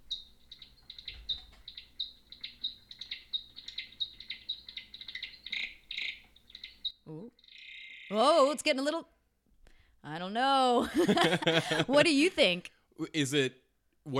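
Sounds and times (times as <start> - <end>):
male Mexican free-tailed bat singing with rapid high chirps and buzzy trills: 0.0 - 8.7
speech: 8.2 - 9.2, 10.1 - 14.1
laughter: 10.8 - 12.3.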